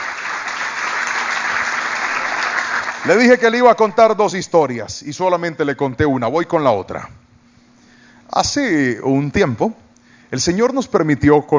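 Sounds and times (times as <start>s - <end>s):
applause of many hands clapping in a church: 0.0s - 3.4s
speech: 3.0s - 7.2s, 8.4s - 11.5s.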